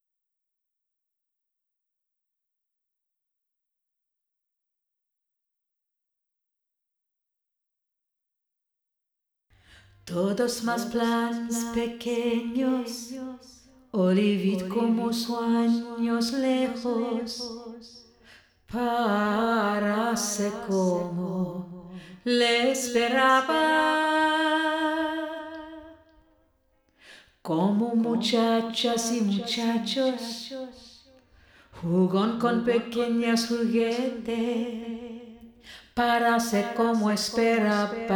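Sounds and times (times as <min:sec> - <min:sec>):
lead vocal with reverb: 0:10.0 - 0:26.1, 0:27.5 - 0:31.0, 0:31.8 - 0:38.1.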